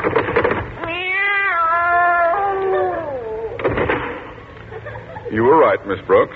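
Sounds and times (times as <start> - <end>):
cat in a drawer meowing: 0.8 - 3.6
laughter: 4.6 - 5.7
speech: 5.8 - 6.3.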